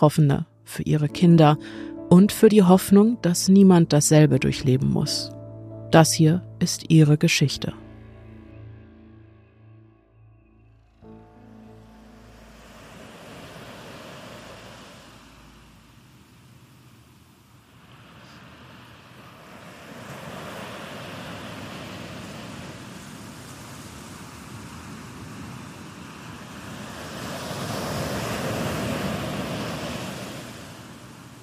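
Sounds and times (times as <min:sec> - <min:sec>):
speech: 0:00.0 - 0:07.8
sea surf roaring by a pier at sunset: 0:10.8 - 0:31.4.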